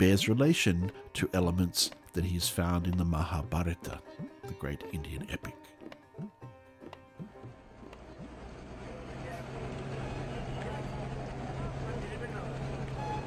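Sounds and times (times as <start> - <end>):
speech: 0.0 - 6.4
vans, cars and rickshaws passing in Ponta Sahib streets: 7.3 - 13.2
bus engine rumble: 7.5 - 13.2.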